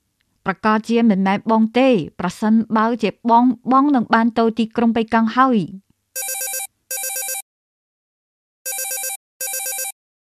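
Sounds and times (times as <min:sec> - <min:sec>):
speech: 0:00.5 - 0:05.8
mobile phone ringing with an electronic warbling ringtone: 0:06.2 - 0:07.4, 0:08.7 - 0:10.0.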